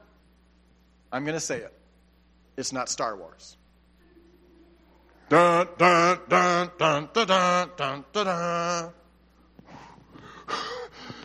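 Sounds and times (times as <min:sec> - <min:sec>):
speech: 0:01.1 - 0:01.8, 0:02.6 - 0:03.6, 0:05.3 - 0:09.0
person gasping for breath: 0:09.7 - 0:11.2.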